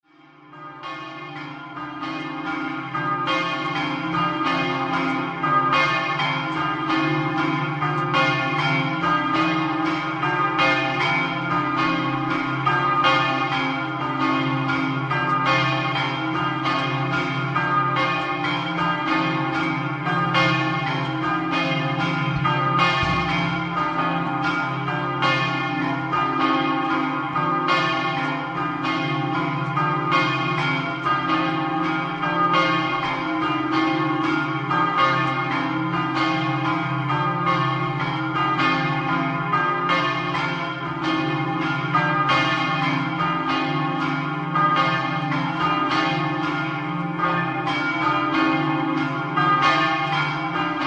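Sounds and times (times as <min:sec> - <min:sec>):
bells in Ronchis di Latisana: 0:00.5 - 0:50.8.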